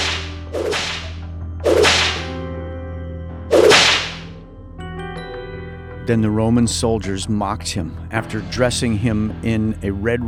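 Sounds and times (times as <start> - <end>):
whip cracks: 0.0 - 2.4, 3.5 - 4.4
speech: 6.1 - 10.2.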